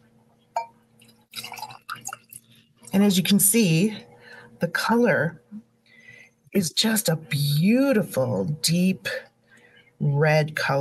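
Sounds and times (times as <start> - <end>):
red wine from Castilla y León poured into a glass: 1.0 - 2.5
speech: 2.9 - 5.5, 6.6 - 9.3, 10.0 - 10.8.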